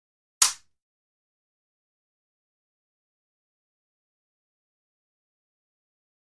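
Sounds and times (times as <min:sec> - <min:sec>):
fencing sword hit: 0:00.4 - 0:00.6.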